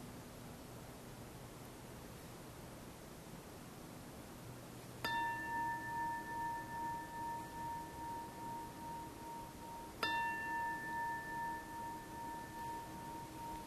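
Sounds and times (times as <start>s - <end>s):
meditation bell ringing and reverberating: 5.0s - 13.6s.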